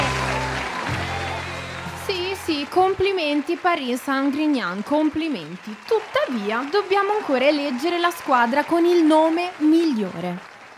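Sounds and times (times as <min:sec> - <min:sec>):
brief whistle-like cheer: 0:00.0 - 0:02.7
crowd applauding: 0:00.0 - 0:10.7
speech: 0:02.5 - 0:10.7.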